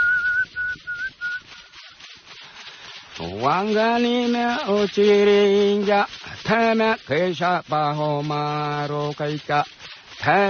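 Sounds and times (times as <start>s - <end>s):
man whistling during healing ritual: 0.0s - 1.7s
speech: 3.2s - 10.4s.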